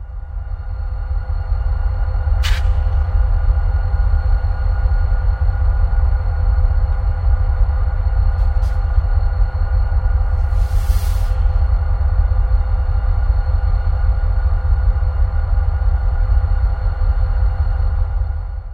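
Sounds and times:
machinery drone: 0.0s - 18.7s
stalled passenger train interior rumble and hum: 0.0s - 18.7s
short hiss: 2.4s - 2.8s.

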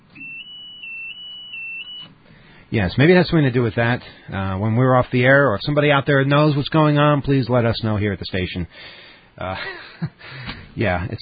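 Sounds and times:
low noise: 0.0s - 11.2s
electronic alarm beeping: 0.2s - 2.1s
speech: 2.7s - 11.2s.

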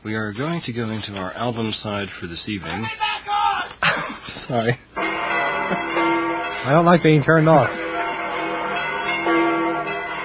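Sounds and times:
speech: 0.0s - 3.4s, 4.0s - 4.9s, 6.6s - 7.8s
church bells of St. Peter's ringing: 5.0s - 10.2s.

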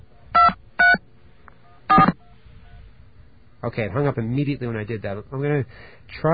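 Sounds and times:
faint phone line hiss: 1.0s - 6.3s
DTMF touch-tone telephone key beeps: 1.9s - 2.3s
speech: 3.6s - 6.3s.

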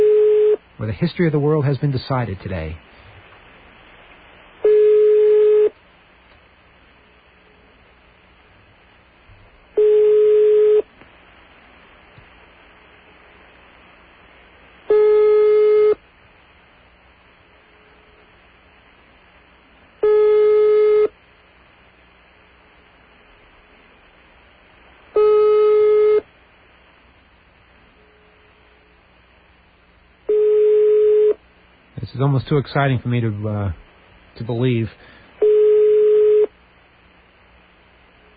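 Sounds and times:
telephone line beeps on a call: 0.0s - 0.6s, 4.6s - 5.8s, 9.8s - 10.9s, 14.9s - 16.0s, 20.0s - 21.1s, 25.2s - 26.2s, 30.3s - 31.4s, 35.4s - 36.5s
speech: 0.8s - 2.9s, 32.2s - 33.8s, 34.4s - 35.2s.

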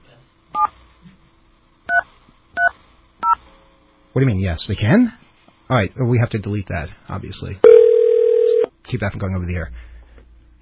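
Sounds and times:
speech: 4.2s - 7.8s, 8.9s - 9.9s
touch-tone DTMF telephone keypad dialing tones: 7.7s - 8.7s.

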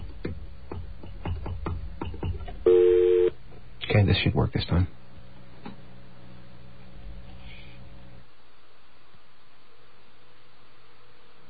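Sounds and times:
faint noise: 0.0s - 11.4s
telephone keypad dialing tones: 2.7s - 3.3s
speech: 4.0s - 5.0s.

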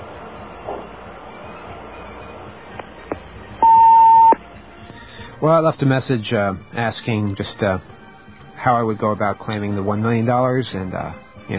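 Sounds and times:
answering machine beep: 3.6s - 4.4s
hissy phone-line background: 3.6s - 4.4s
speech: 5.4s - 8.0s, 8.6s - 11.5s.

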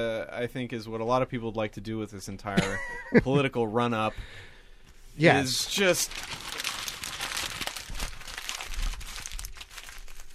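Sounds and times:
speech: 0.0s - 4.5s, 5.2s - 6.5s
paper ballot being crumpled up by hand: 5.7s - 10.3s.

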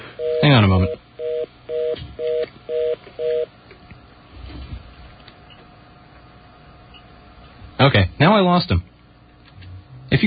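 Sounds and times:
telephone dial tone beeps: 0.2s - 3.5s
speech: 0.6s - 1.0s, 8.3s - 8.9s.

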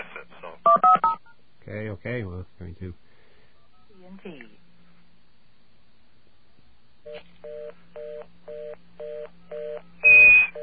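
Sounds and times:
speech: 1.7s - 3.2s, 4.1s - 4.6s
touch-tone telephone keypad entering a calling card number: 7.1s - 10.6s.

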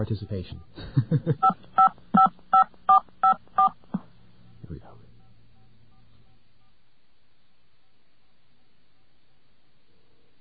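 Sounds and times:
speech: 0.0s - 1.7s
telephone touch-tone keypad beeps: 1.4s - 3.8s.

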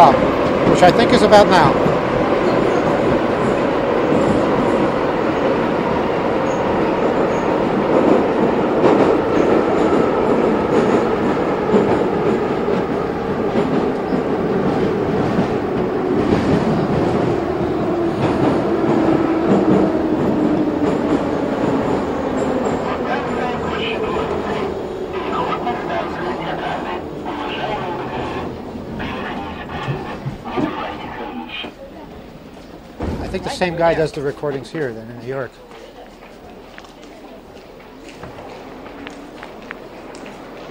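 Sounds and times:
speech: 0.0s - 1.9s, 33.6s - 35.7s
Moscow metro subway train riding through a tunnel: 0.0s - 40.7s.

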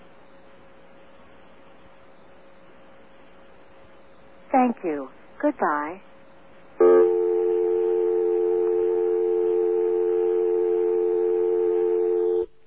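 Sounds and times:
speech: 4.6s - 6.1s
telephone dial tone: 7.2s - 12.5s.

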